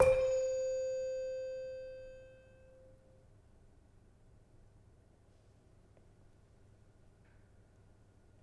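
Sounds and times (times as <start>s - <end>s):
demung played softly in gamelan: 0.0s - 2.3s.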